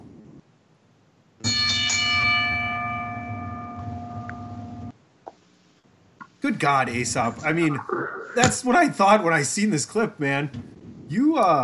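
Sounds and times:
wrestling ring bell struck: 0:01.5 - 0:04.8
speech: 0:06.5 - 0:11.6.

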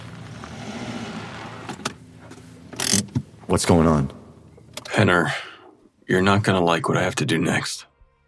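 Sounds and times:
hearse engine droning driving off-road over rough ground: 0:00.0 - 0:04.9
speech: 0:03.5 - 0:04.2, 0:05.0 - 0:05.5, 0:06.1 - 0:07.9.

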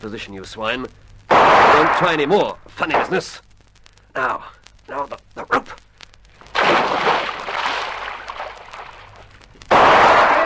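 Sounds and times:
speech: 0:00.0 - 0:03.5, 0:04.2 - 0:05.8
gunshots in a radio drama: 0:01.3 - 0:02.2, 0:06.6 - 0:08.4, 0:09.7 - 0:10.4.

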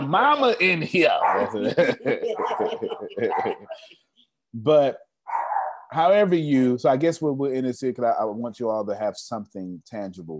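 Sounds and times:
speech: 0:00.1 - 0:05.1, 0:05.9 - 0:10.3
dogs barking excitedly: 0:01.2 - 0:01.7, 0:02.3 - 0:03.6, 0:05.3 - 0:05.9
laughter: 0:01.4 - 0:03.9.

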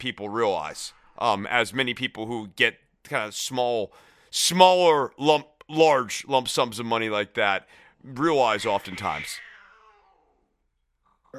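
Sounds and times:
speech: 0:00.0 - 0:09.5
drawn-out cat meow with falling pitch: 0:08.6 - 0:10.4.

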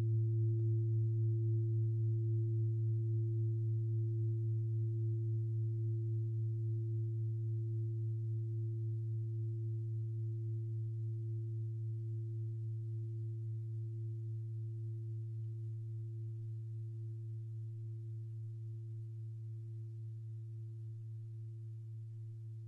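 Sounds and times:
steady low tone at 110.96 Hz: 0:00.0 - 0:22.6.

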